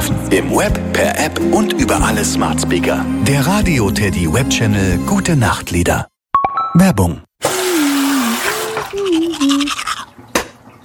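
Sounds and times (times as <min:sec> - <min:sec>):
speech: 0:00.3 - 0:06.1, 0:06.8 - 0:07.5
running tap with steady hiss of water: 0:07.4 - 0:10.8
teeth being brushed with scratchy scrubbing strokes: 0:08.2 - 0:10.1.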